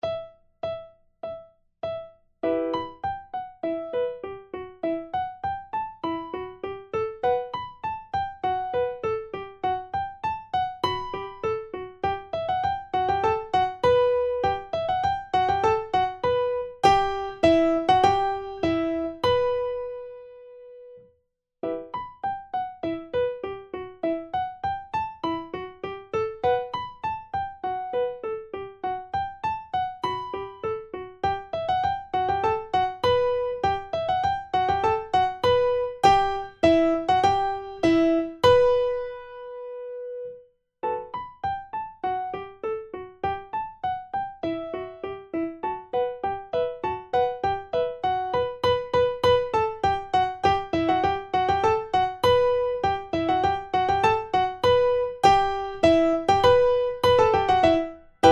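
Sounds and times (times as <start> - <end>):
primo part of four-hands practice piece playback: 0.0 - 58.2.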